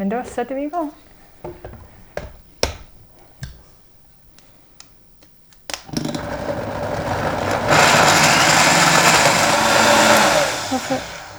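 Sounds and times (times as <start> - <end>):
speech: 0.0 - 1.9
sharp clicks and taps: 0.2 - 6.2
blender mixing a creamy mixture: 5.8 - 11.3.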